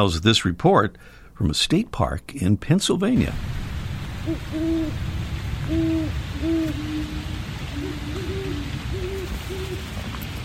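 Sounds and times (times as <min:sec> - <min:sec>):
speech: 0:00.0 - 0:03.6, 0:04.2 - 0:06.9
steady low background noise: 0:00.0 - 0:10.4
two Great Horned Owls hooting to each other: 0:04.2 - 0:05.0, 0:05.6 - 0:09.9.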